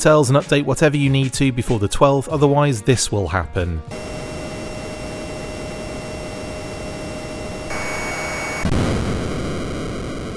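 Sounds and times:
speech: 0.0 - 4.2
faint high electronic tones: 3.9 - 10.3
synthesized jet roar from an NES jet-fighter video game landing on an aircraft carrier: 3.9 - 10.3.

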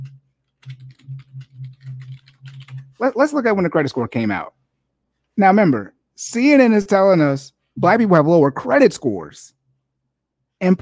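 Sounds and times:
rapid typing on a computer keyboard: 0.0 - 3.0
steady low hum: 0.0 - 3.1
speech: 2.5 - 4.6, 5.4 - 9.6, 10.6 - 10.8.

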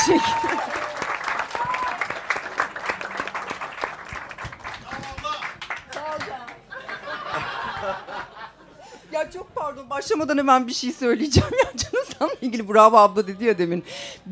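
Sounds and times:
speech: 0.0 - 0.8, 10.0 - 14.3
concert audience clapping for a performer: 0.0 - 8.2
audience members chuckling: 6.7 - 8.9.

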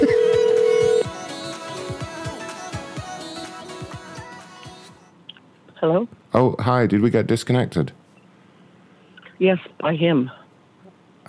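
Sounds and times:
telephone dial tone: 0.0 - 1.1
speech: 5.8 - 8.0, 9.4 - 10.4.

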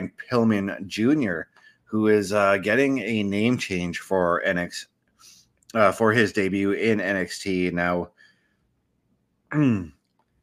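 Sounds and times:
speech: 0.3 - 4.9, 5.7 - 8.2, 9.5 - 10.0
throat clearing: 9.5 - 9.9.

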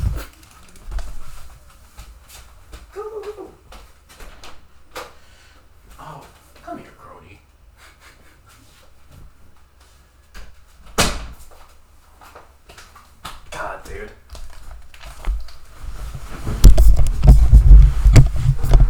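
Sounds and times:
cat scratching at a door: 0.0 - 1.7, 14.4 - 18.8
soft murmur: 0.0 - 4.4.

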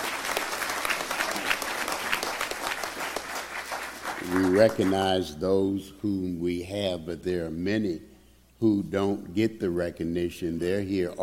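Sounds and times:
audience applause: 0.0 - 5.1
speech: 4.3 - 11.2.

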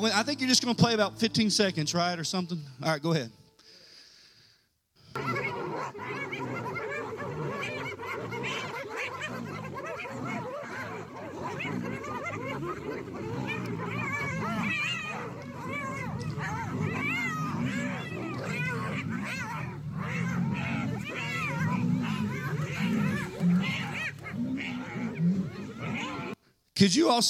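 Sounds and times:
speech: 0.0 - 3.4, 26.8 - 27.2
pack of hyenas snarling and yelping while attacking a lion: 5.0 - 26.4.

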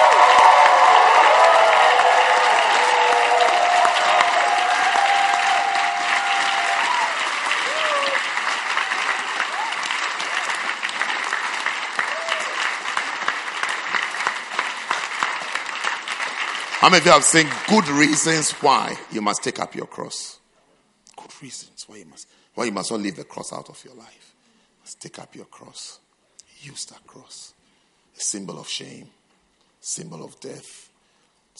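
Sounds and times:
scattered cheers and whoops from a crowd: 0.0 - 10.6, 12.0 - 12.8
large crowd clapping: 0.0 - 19.6
speech: 16.9 - 20.4, 21.4 - 26.0, 26.6 - 27.6, 28.2 - 29.2, 29.8 - 30.9.

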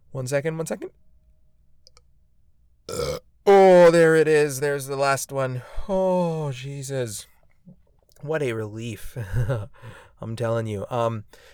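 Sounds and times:
speech: 0.1 - 1.0, 2.9 - 7.3, 8.2 - 11.5
low drawn-out burp: 2.9 - 3.7.

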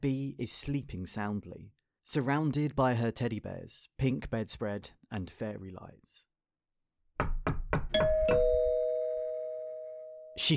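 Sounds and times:
speech: 0.0 - 6.3, 8.3 - 8.6, 10.4 - 10.5
heavy knocks on a white PVC door: 7.2 - 8.2
two-tone doorbell chime: 8.0 - 10.4.

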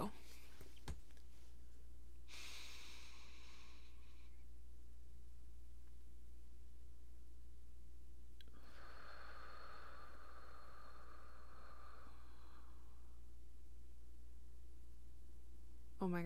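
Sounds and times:
steady low hum: 0.0 - 16.2
slow deep breathing: 2.2 - 4.5, 8.4 - 13.4.

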